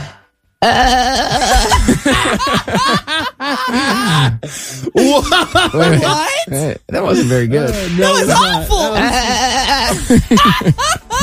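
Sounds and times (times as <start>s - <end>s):
person imitating a sheep's bleat with a quavering voice: 0.6s - 1.8s
short bursts of laughter: 1.6s - 6.4s, 9.3s - 11.2s
speech: 2.3s - 3.0s, 3.7s - 11.2s.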